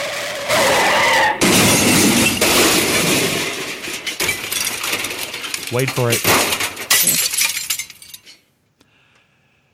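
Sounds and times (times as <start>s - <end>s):
car with detached wheel crashing into two parked cars: 0.0s - 8.2s
car crash debris clattering: 1.4s - 8.5s
car glass shattering: 1.4s - 8.5s
speech: 5.7s - 7.2s.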